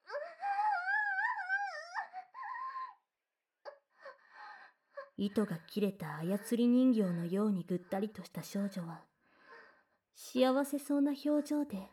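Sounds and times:
wailing crying voice resounding in a changing room: 0:00.0 - 0:03.0
speech: 0:05.2 - 0:09.1, 0:10.2 - 0:11.9.

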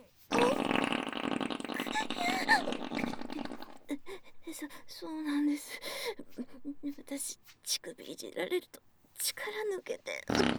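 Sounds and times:
long loud rumbling fart: 0:00.3 - 0:03.9, 0:10.3 - 0:10.5
speech: 0:04.5 - 0:10.5.

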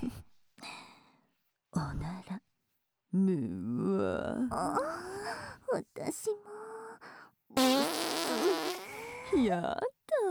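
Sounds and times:
speech: 0:03.1 - 0:06.6, 0:09.3 - 0:10.0
long buzzy fart: 0:07.6 - 0:09.1.

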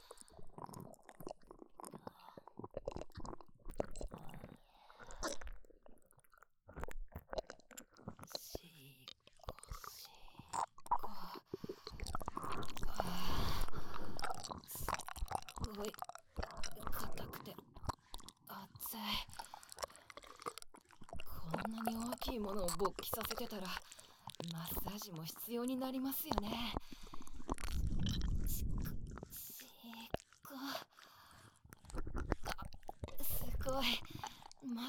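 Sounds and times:
saliva dripping: 0:00.0 - 0:34.8
wet mouth sounds: 0:00.0 - 0:34.8
speech: 0:22.4 - 0:27.0.

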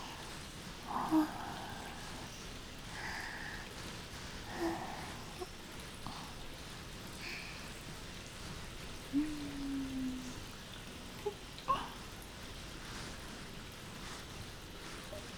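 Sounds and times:
shampoo foam being lathered in hair: 0:00.2 - 0:15.3.

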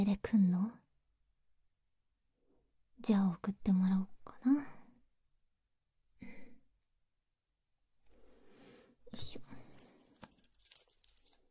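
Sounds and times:
speech: 0:00.0 - 0:00.8, 0:03.0 - 0:04.7
spare key jangling in hand: 0:09.7 - 0:11.4.

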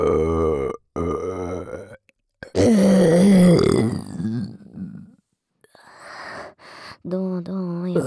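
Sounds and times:
person burping: 0:00.0 - 0:04.5.

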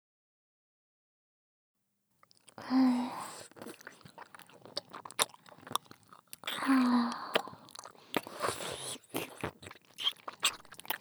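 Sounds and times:
biting and chewing a lollipop on a stick: 0:02.2 - 0:10.9.

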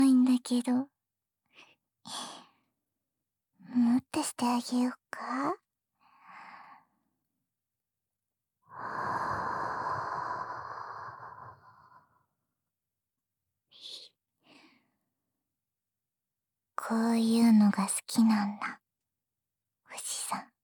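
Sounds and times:
speech: 0:00.4 - 0:00.9, 0:03.7 - 0:05.6, 0:16.9 - 0:18.8, 0:19.9 - 0:20.5
close airy breathing into the microphone: 0:08.7 - 0:12.2.

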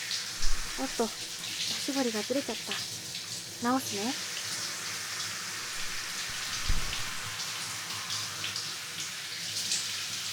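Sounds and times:
warm water poured over a person's hair during a hair wash: 0:00.1 - 0:02.9, 0:05.0 - 0:10.2
speech: 0:00.8 - 0:01.3, 0:01.9 - 0:02.9, 0:03.6 - 0:04.3.

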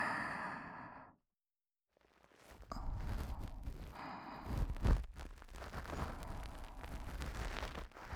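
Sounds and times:
ear pick cleaning the right ear for sleep: 0:02.1 - 0:08.1.

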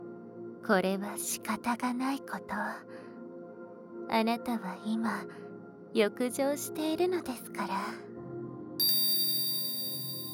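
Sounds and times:
speech: 0:00.6 - 0:03.0, 0:04.1 - 0:08.1
hypnosis bell chime struck: 0:08.8 - 0:10.3.

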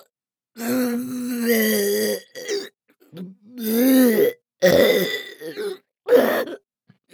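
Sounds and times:
loud harsh croaking burping: 0:00.6 - 0:02.7, 0:03.6 - 0:06.6.

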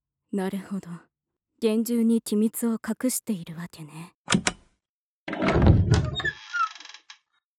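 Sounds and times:
speech: 0:00.3 - 0:04.5
heavy hidden door to a secret laboratory passage thudding open: 0:05.4 - 0:06.3.

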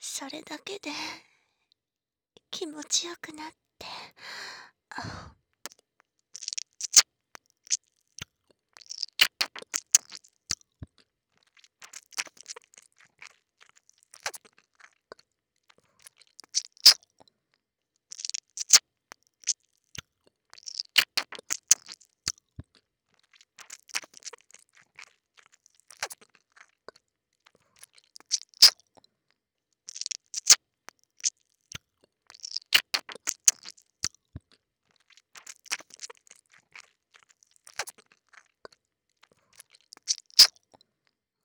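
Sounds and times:
speech: 0:00.2 - 0:01.3, 0:02.5 - 0:05.4
breathy sigh: 0:03.9 - 0:05.4
wet sticky chewing and smacking of a thick substance in the mouth: 0:05.7 - 0:17.4, 0:18.1 - 0:40.9.

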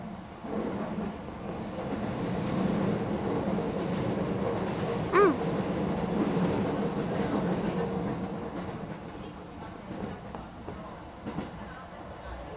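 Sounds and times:
train rolling along rails with low rumble: 0:00.0 - 0:12.5.

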